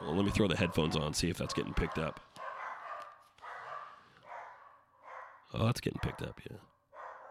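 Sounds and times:
dogs barking at delivery people: 0.0 - 7.2
speech: 0.2 - 2.3, 5.5 - 6.7.

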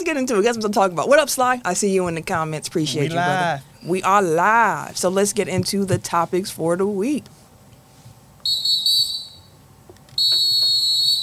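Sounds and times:
speech: 0.1 - 7.4
loud high-pitched whistle blasts: 8.4 - 9.6, 10.2 - 11.2.

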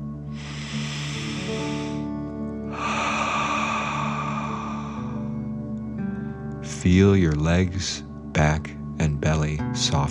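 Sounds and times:
soft steady musical drone: 0.0 - 8.4
deep breath in through the nose: 0.3 - 6.5
speech: 6.8 - 10.0.

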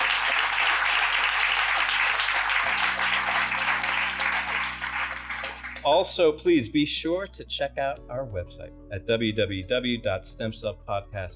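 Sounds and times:
audience applause: 0.0 - 6.1
speech: 5.8 - 11.3.

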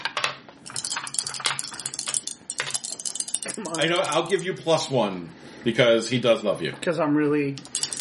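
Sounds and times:
dice clattering and rattling against a tabletop: 0.2 - 4.4
speech: 3.6 - 7.8.

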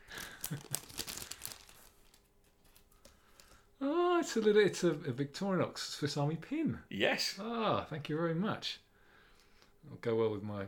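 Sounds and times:
Swiss wrapping paper crinkling and tearing as a gift is unwrapped: 0.0 - 3.7
speech: 0.5 - 0.8, 3.8 - 8.8, 9.8 - 10.6.

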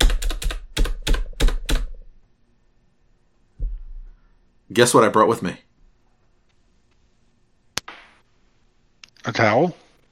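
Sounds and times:
typing on a laptop computer keyboard: 0.0 - 2.0
speech: 4.7 - 5.7, 9.3 - 9.8.

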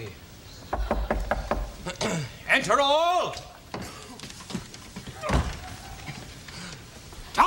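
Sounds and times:
faint hiss: 0.0 - 7.4
woman knocking on a door: 0.7 - 1.9
speech: 2.6 - 3.5.

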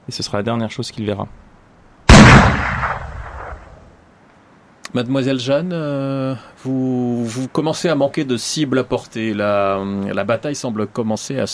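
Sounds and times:
speech: 0.1 - 1.5, 5.0 - 11.5
booming echo of a shotgun blast: 2.1 - 3.9
double-barreled shotgun blast: 2.1 - 3.9.

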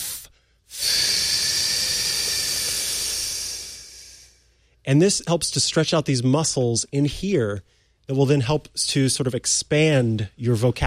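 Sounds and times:
person exhaling during a vocal warm-up exercise: 0.0 - 4.8
speech: 4.8 - 10.8.

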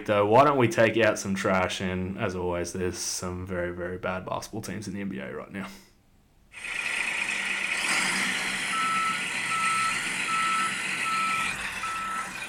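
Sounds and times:
speech: 0.0 - 5.9
large truck reversing alarm beeping: 7.8 - 12.4.

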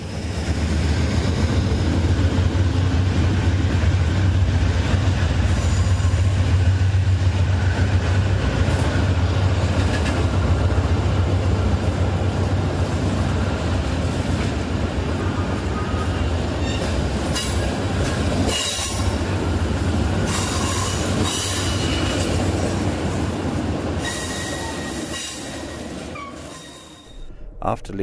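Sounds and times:
train rolling through a large station train shed: 0.0 - 28.0
brief train squeals: 26.2 - 27.4
speech: 27.8 - 28.0.

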